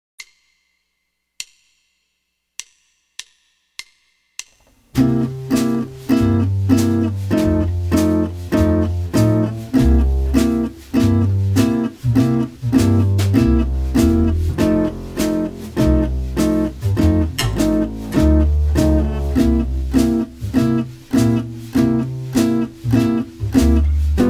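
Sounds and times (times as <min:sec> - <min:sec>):
jazz guitar playing twelve-bar blues in C: 0:04.9 - 0:24.2.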